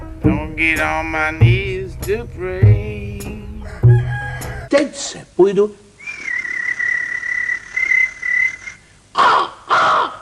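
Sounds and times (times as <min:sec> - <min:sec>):
speech: 0:00.6 - 0:03.3, 0:04.7 - 0:05.8
long whistled bird note: 0:06.0 - 0:08.8
harsh bird caws: 0:09.2 - 0:10.1.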